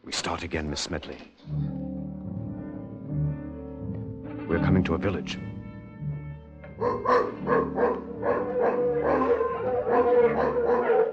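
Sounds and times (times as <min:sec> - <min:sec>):
speech: 0:00.1 - 0:01.7, 0:04.5 - 0:05.5, 0:06.8 - 0:08.1
pack of mongrel dogs barking and howling in a village: 0:06.8 - 0:11.1.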